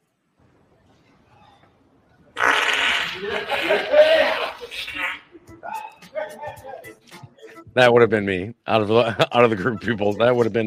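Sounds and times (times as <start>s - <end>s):
man farting in a video being played back: 2.4s - 4.5s
laughter: 2.9s - 6.6s, 8.9s - 10.0s
speech: 3.2s - 5.2s, 7.7s - 10.6s.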